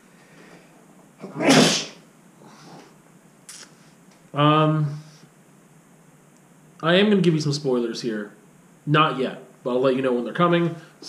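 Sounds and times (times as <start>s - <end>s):
speech: 1.2s - 1.6s, 4.3s - 5.0s, 6.8s - 11.0s
person sneezing: 1.2s - 2.6s.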